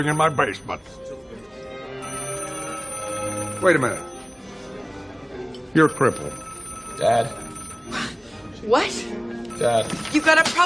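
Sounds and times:
telephone ringing with an electronic trill: 0.0s - 1.0s, 2.0s - 4.9s, 5.6s - 8.5s, 9.5s - 10.6s
speech: 0.0s - 1.2s, 3.6s - 4.1s, 5.7s - 6.4s, 7.0s - 8.0s, 8.6s - 10.6s.

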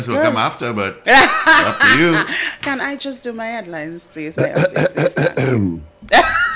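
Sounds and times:
speech: 0.0s - 6.4s
laughter: 1.1s - 2.5s
deep rumbling throat clearing: 4.5s - 5.9s.

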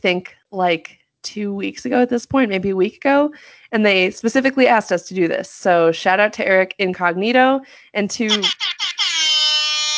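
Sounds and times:
speech: 0.0s - 8.7s
loud brassy air horn blasts: 8.3s - 9.9s.

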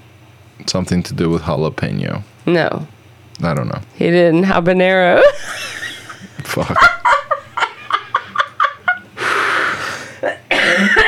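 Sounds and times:
speech: 0.6s - 5.6s, 6.5s - 7.0s
laughter: 5.2s - 9.2s
coughing fit with raspy coughing bursts: 10.1s - 11.0s.

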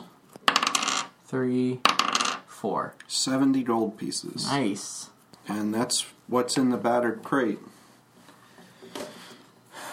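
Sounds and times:
two six-sided dice rolling on a hard surface: 0.4s - 1.1s, 1.8s - 2.4s
speech: 1.3s - 2.0s, 2.6s - 7.8s.

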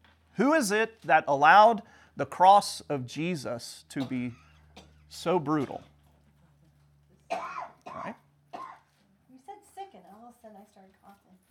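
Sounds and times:
speech: 0.4s - 4.4s, 5.1s - 5.9s, 10.4s - 11.4s
audience member coughing: 4.0s - 5.0s, 7.3s - 8.9s.

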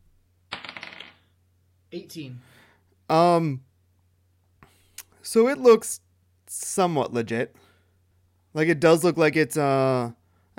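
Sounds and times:
dice clattering onto a hard tabletop: 0.5s - 1.3s
speech: 1.9s - 3.7s, 5.2s - 7.6s, 8.5s - 10.5s.

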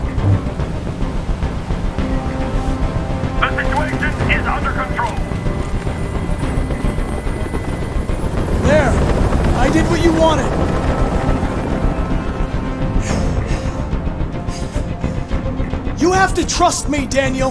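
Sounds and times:
helicopter flying overhead: 0.0s - 17.1s
voices: 3.4s - 5.3s
speech: 10.0s - 10.6s, 16.2s - 17.4s.

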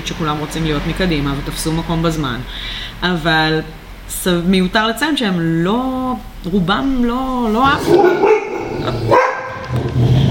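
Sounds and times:
room noise: 0.0s - 10.2s
speech: 0.1s - 9.2s
dog barking in sharp loud yaps: 7.8s - 9.8s.

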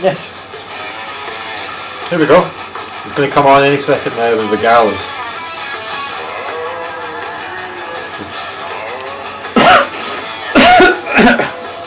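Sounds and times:
speech: 0.0s - 0.4s, 2.1s - 5.2s
harsh coughs: 9.5s - 11.6s.

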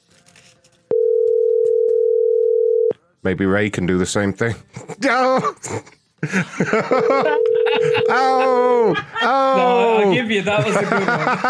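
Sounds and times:
telephone dial tone: 0.9s - 2.9s, 7.4s - 8.0s
speech: 3.2s - 11.4s
laughter: 4.8s - 11.4s.

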